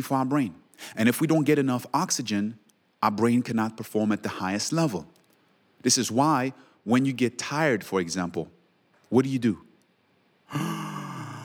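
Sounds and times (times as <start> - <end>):
speech: 0.0 - 5.2, 5.8 - 9.7, 10.5 - 10.8
yawn: 10.5 - 11.4.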